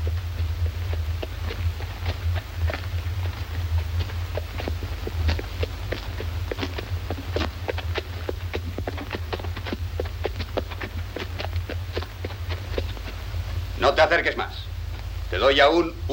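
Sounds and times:
footsteps of a man walking along a deserted street on a hard surface: 0:00.0 - 0:15.6
constant low rumble: 0:00.0 - 0:16.1
speech: 0:13.9 - 0:14.7, 0:15.3 - 0:16.1.

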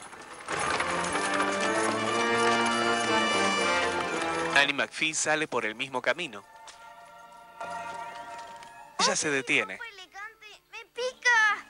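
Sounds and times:
horse hooves of a carriage clip-clopping: 0:00.0 - 0:04.8, 0:06.4 - 0:09.3
sustained music: 0:00.3 - 0:04.9
speech: 0:04.6 - 0:06.6, 0:09.0 - 0:09.9.

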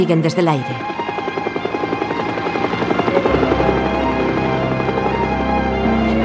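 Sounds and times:
speech: 0:00.0 - 0:01.0
helicopter rotor chopping: 0:00.0 - 0:06.2.

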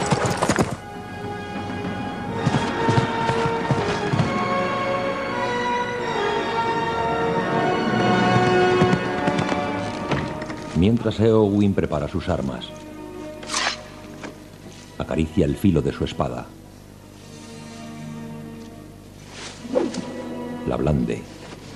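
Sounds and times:
horse hooves galloping: 0:00.0 - 0:05.2, 0:07.4 - 0:10.9
dense loud orchestral score: 0:00.0 - 0:21.7
speech: 0:10.8 - 0:12.9, 0:15.1 - 0:16.6, 0:20.7 - 0:21.3.

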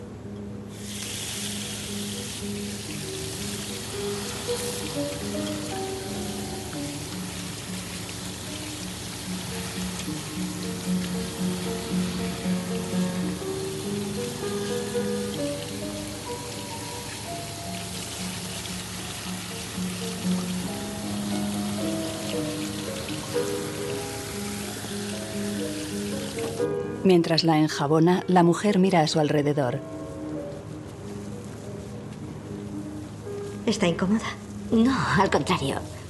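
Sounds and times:
water from a washbasin tap running over a woman's hair: 0:00.8 - 0:26.7
speech: 0:27.0 - 0:30.0, 0:33.7 - 0:35.9.

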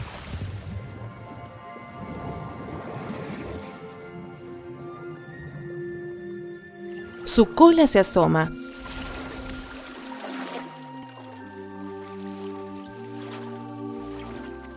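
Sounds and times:
splash of something plunging into water: 0:00.0 - 0:01.0, 0:08.5 - 0:14.7
churning, bubbling water turbulence: 0:00.0 - 0:07.4, 0:08.5 - 0:14.7
steady sustained musical backdrop: 0:00.6 - 0:14.7
speech: 0:07.3 - 0:08.6.

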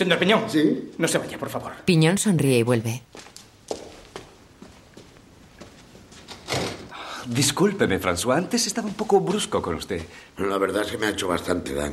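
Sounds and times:
speech: 0:00.0 - 0:03.3, 0:07.3 - 0:11.9
soft footsteps crossing a room: 0:03.1 - 0:06.5, 0:08.3 - 0:10.2
door closing with a thud: 0:06.3 - 0:07.0.

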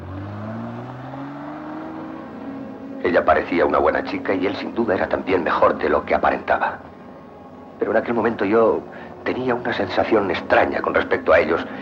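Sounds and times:
car engine driving off: 0:00.0 - 0:04.7
speech: 0:03.0 - 0:06.9, 0:07.8 - 0:11.8.

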